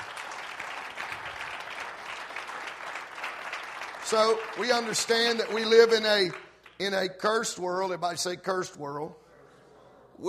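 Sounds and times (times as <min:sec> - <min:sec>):
audience clapping hands: 0:00.0 - 0:07.3
speech: 0:04.1 - 0:09.2.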